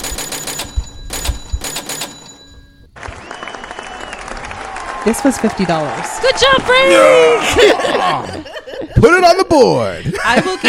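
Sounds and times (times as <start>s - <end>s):
cash register sound effect with mechanical clacking and bell ring: 0.0s - 2.8s
speech: 5.0s - 10.6s
laughter: 6.4s - 10.6s.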